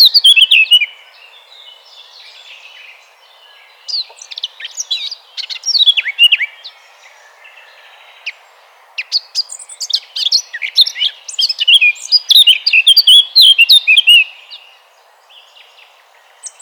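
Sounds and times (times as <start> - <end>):
Eurasian blackcap singing: 0.0 - 1.0, 3.8 - 6.7, 9.0 - 14.7, 16.4 - 16.6.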